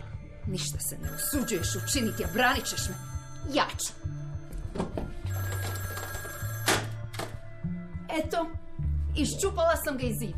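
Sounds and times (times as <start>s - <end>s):
speech: 0.5s - 5.4s, 8.2s - 8.6s, 9.2s - 10.3s
telephone bell ringing: 1.0s - 3.5s, 5.2s - 7.1s.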